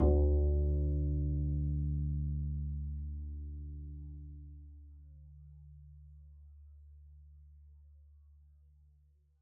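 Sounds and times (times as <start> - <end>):
double bass pizzicato D2 note: 0.0 - 7.7.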